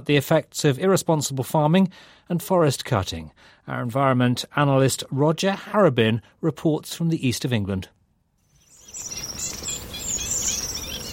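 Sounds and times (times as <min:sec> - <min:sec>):
speech: 0:00.0 - 0:08.0
bird calls and chirps in a fen wetland at dawn: 0:08.4 - 0:11.1
steady hum of insects in a fen wetland at dawn: 0:08.5 - 0:11.1.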